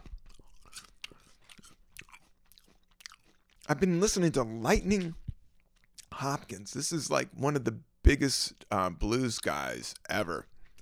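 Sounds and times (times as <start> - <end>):
person biting into a crunchy green apple: 0.0 - 6.5
softer wet chewing of a green apple: 0.0 - 6.6, 9.3 - 10.8
speech: 3.7 - 5.2, 6.2 - 10.5.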